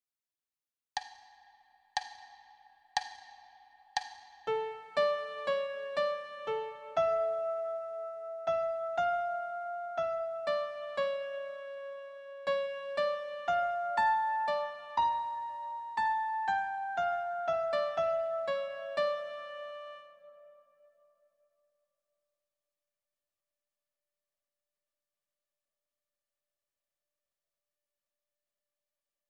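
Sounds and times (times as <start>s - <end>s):
piano note: 4.5s - 20.9s.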